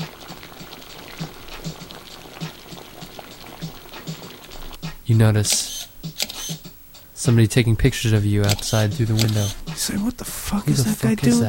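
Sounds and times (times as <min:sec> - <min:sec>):
water at a rolling boil in a kitchen pot: 0:00.0 - 0:04.8
speech: 0:05.1 - 0:05.7, 0:07.2 - 0:11.4.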